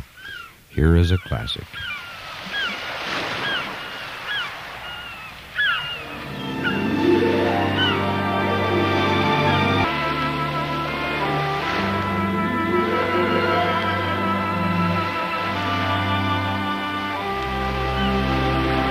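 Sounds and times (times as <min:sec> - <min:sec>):
seagulls crying overhead: 0:00.0 - 0:18.8
speech: 0:00.8 - 0:01.9
ocean surf washing in: 0:02.2 - 0:18.8
sustained orchestral music: 0:06.0 - 0:18.8.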